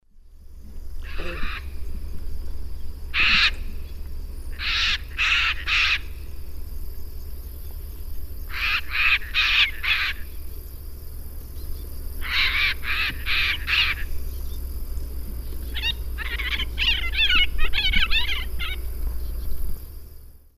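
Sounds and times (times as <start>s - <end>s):
pair of Ara severus flight calls in the Eastern Lowlands of South America: 1.0s - 19.9s.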